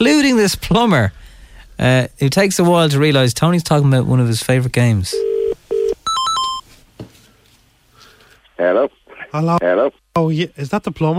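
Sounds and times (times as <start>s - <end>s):
speech: 0.0s - 5.3s, 8.6s - 11.1s
telephone tone and bright electronic notes on a call: 5.2s - 6.6s.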